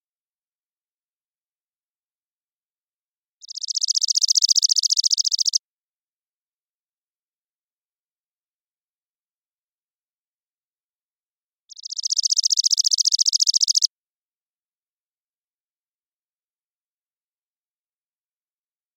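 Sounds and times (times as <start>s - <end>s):
Chipping sparrow Spizella passerina trilling song in Washington tree-grass open spaces: 3.4s - 5.6s, 11.7s - 13.9s.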